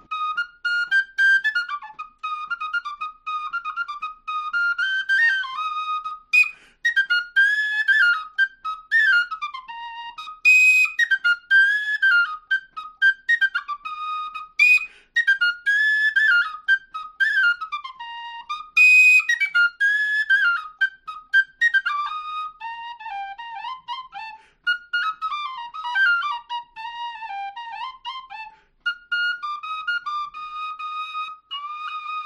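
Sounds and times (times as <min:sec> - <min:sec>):
F tin whistle playing a lively melody: 0:00.0 - 0:32.2.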